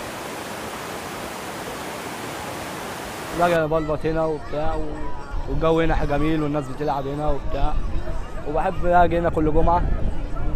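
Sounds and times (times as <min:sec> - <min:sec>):
waterfall at a river barrage roaring: 0:00.0 - 0:03.6
speech: 0:03.4 - 0:10.1.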